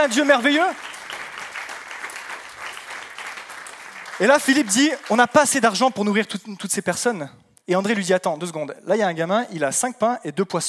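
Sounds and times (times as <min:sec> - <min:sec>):
speech: 0:00.0 - 0:00.9, 0:04.2 - 0:10.6
congregation applause during a morning church service: 0:00.0 - 0:05.8.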